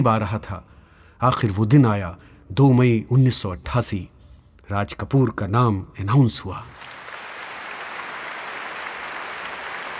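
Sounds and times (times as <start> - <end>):
speech: 0.0 - 4.1, 4.7 - 7.0
large hall audience applauding at an award announcement: 6.8 - 9.9.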